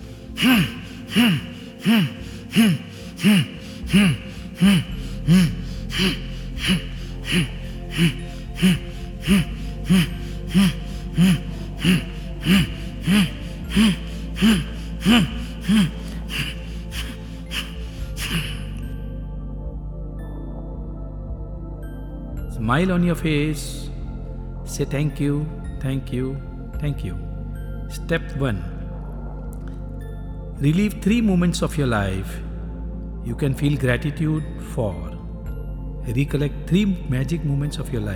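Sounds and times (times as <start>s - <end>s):
constant low hum: 0.0s - 18.8s
person breathing forcefully and rhythmically: 0.0s - 18.9s
speech: 0.4s - 16.5s, 22.6s - 23.8s, 24.7s - 27.3s, 28.0s - 28.7s, 30.6s - 32.5s, 33.2s - 35.0s, 36.0s - 38.1s.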